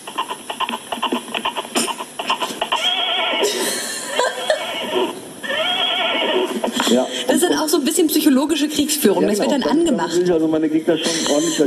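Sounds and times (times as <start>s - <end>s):
horse whinnying when pinched on the ear over a telephone receiver: 1.8s - 6.9s
speech: 6.9s - 11.6s.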